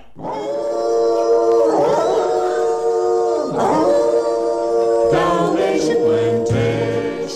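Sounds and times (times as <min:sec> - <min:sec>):
dogs howling: 0:00.2 - 0:07.2.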